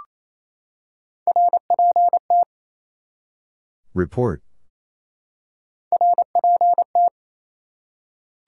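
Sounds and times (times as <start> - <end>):
fast Morse code beeps at 28 words per minute: 1.3 - 2.5, 5.9 - 7.1
speech: 3.9 - 4.5.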